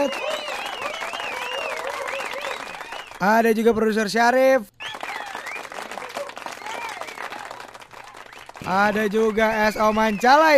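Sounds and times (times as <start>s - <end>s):
dense crowd applause: 0.0s - 3.2s, 4.8s - 10.5s
wavering cheers and whoops: 0.0s - 3.2s, 4.8s - 10.5s
speech: 3.2s - 4.7s, 8.7s - 10.5s.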